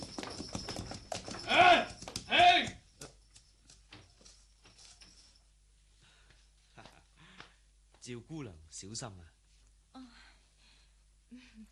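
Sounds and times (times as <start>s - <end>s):
horse-drawn carriage hooves clip-clopping in a lane: 0.0s - 5.4s
speech: 8.1s - 9.4s.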